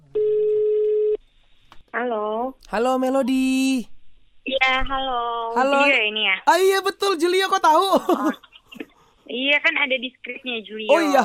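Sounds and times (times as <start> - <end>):
electronic ringback tone on an outgoing phone call: 0.2 - 1.2
speech: 2.7 - 3.9, 4.6 - 8.5, 9.3 - 11.2.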